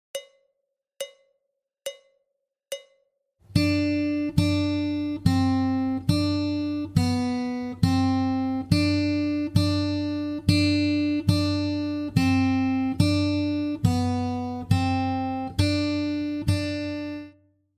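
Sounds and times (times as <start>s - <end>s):
guitar warm-up in high D: 3.5s - 17.4s.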